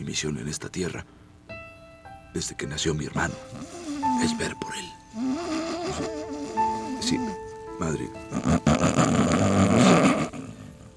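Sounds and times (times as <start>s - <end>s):
speech: 0.0s - 1.2s, 2.3s - 9.2s
loud rough rasping snore: 3.4s - 7.4s, 8.3s - 10.9s.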